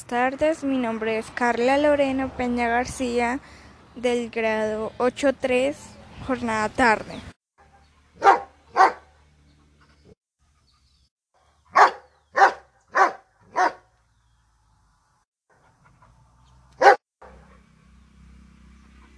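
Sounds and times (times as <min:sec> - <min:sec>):
speech: 0:00.0 - 0:07.3
dog barking: 0:07.6 - 0:09.1, 0:11.7 - 0:13.9, 0:16.8 - 0:17.6.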